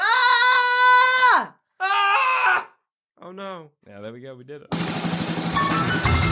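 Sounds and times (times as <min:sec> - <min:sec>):
loud sustained human scream sliding down in pitch: 0:00.0 - 0:02.8
speech: 0:03.3 - 0:06.2.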